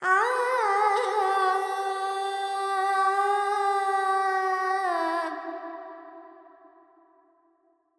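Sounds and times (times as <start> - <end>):
Carnatic female alap in raga Panthuvarali with reverb: 0.0 - 5.4.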